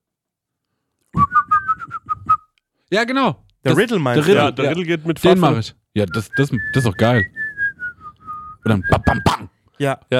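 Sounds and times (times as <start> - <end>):
person whistling a quick bouncy dance tune: 1.2 - 2.6, 6.6 - 9.4
speech: 2.9 - 7.4, 8.6 - 10.1.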